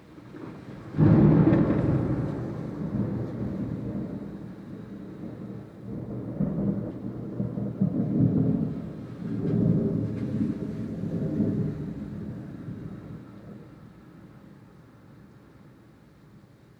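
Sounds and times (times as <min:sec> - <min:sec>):
loud thunder clap rolling and rumbling: 0:00.0 - 0:14.0.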